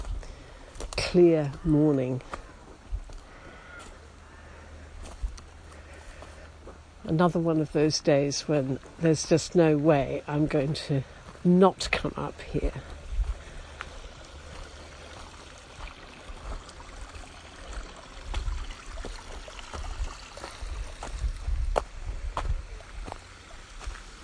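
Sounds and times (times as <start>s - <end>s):
speech: 1.1s - 2.4s, 7.1s - 13.0s
stream water rushing and gurgling outdoors: 12.8s - 24.2s.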